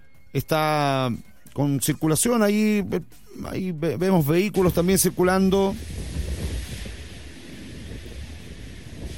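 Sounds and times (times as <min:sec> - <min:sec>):
speech: 0:00.4 - 0:06.0
gusty wind buffeting the microphone: 0:04.7 - 0:09.1
ocean surf breaking along the shore at Pueblo Hundido in Lota: 0:05.4 - 0:09.1.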